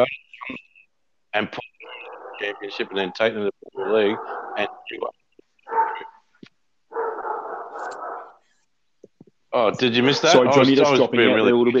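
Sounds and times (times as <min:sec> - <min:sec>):
speech: 0:00.0 - 0:00.6, 0:01.3 - 0:01.7, 0:02.4 - 0:05.2, 0:09.5 - 0:11.7
dogs barking and yelping: 0:01.8 - 0:05.0, 0:05.6 - 0:06.3, 0:06.9 - 0:08.4.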